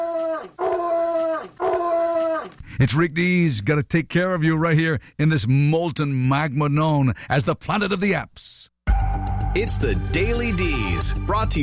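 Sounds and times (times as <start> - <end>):
guard dog howling: 0.0 - 2.6
speech: 2.8 - 11.6.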